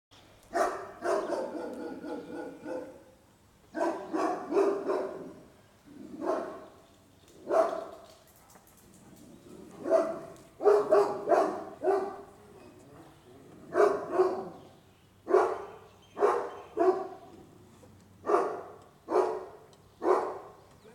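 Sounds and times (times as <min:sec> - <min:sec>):
dog barking: 0:00.5 - 0:03.1, 0:03.8 - 0:05.5, 0:06.1 - 0:06.6, 0:07.4 - 0:08.0, 0:09.6 - 0:12.3, 0:13.7 - 0:14.6, 0:15.3 - 0:17.2, 0:18.2 - 0:20.6.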